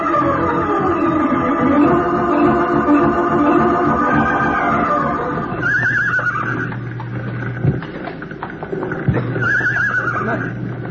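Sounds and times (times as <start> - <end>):
dense roaring background in a burning barn: 0.0 - 10.8
frightened horses neighing and whinnying in a burning barn: 4.6 - 7.0, 9.3 - 10.6.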